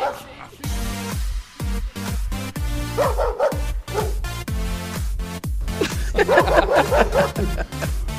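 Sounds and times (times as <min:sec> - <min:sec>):
dog barking: 0:00.0 - 0:00.6, 0:02.9 - 0:04.2, 0:06.2 - 0:07.5
loud steady thumping beat: 0:00.7 - 0:08.1
laughter: 0:05.8 - 0:08.1.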